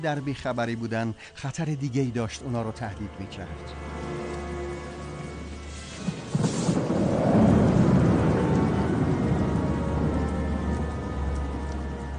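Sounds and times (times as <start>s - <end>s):
speech: 0.0s - 4.1s
steady hiss of rain: 3.5s - 12.1s
thunder rolling through a rainstorm: 4.9s - 12.1s.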